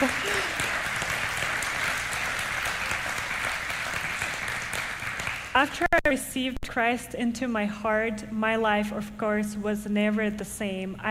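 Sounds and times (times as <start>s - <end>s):
audience applause: 0.0s - 5.7s
speech: 5.6s - 11.0s.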